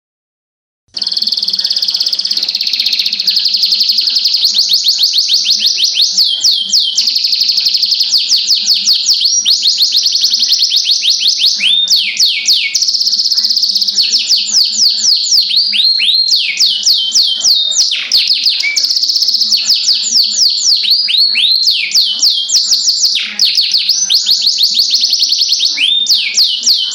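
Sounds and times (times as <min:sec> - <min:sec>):
Oriental magpie-robin song: 0:00.9 - 0:26.9.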